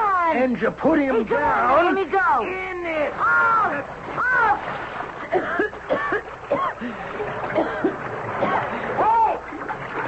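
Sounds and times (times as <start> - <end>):
speech: 0.3 - 7.9
water splashing and churning as a man thrashes in the Nile river: 1.0 - 10.0.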